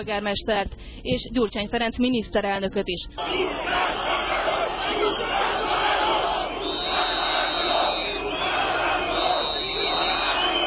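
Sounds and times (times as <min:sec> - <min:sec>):
speech: 0:00.0 - 0:04.1
large protest crowd shouting and jeering: 0:03.2 - 0:10.6
whistles in a protest crowd: 0:06.6 - 0:08.5, 0:09.1 - 0:10.6.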